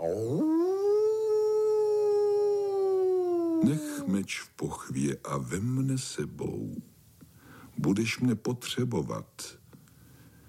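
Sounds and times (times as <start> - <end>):
wolf howling: 0.0 - 4.2
speech: 3.6 - 6.9, 7.8 - 9.6.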